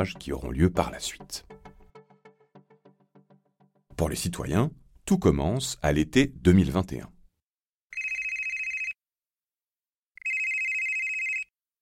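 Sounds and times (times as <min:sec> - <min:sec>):
speech: 0:00.0 - 0:01.5, 0:04.0 - 0:07.2
telephone ringing: 0:07.9 - 0:09.0, 0:10.2 - 0:11.5.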